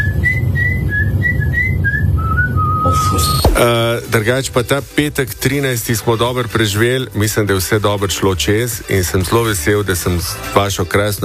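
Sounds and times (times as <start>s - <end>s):
person whistling a tune: 0.0s - 3.7s
low rumble: 0.0s - 5.3s
speech: 3.1s - 11.2s.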